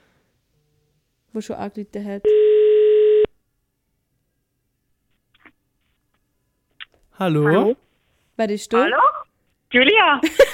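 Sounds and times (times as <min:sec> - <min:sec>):
speech: 0:01.3 - 0:02.6, 0:07.2 - 0:10.5
telephone line tone while a call is placed: 0:02.3 - 0:03.3.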